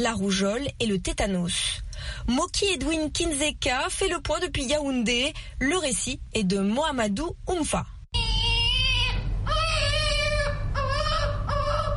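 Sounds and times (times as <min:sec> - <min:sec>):
speech: 0:00.0 - 0:07.9
low hum: 0:00.0 - 0:11.9
4-month-old baby crying while receiving a polio vaccine: 0:08.2 - 0:11.9.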